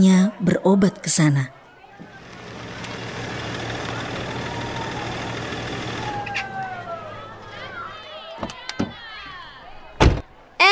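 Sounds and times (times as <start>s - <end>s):
speech: 0.0s - 1.6s
car engine idling: 2.1s - 7.9s.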